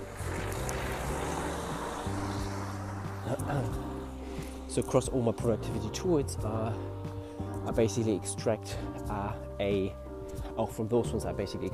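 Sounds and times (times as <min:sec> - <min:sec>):
vehicle engine droning as it drives past: 0:00.0 - 0:05.9
speech: 0:03.5 - 0:03.8, 0:04.8 - 0:07.0, 0:07.6 - 0:10.0, 0:10.6 - 0:11.7.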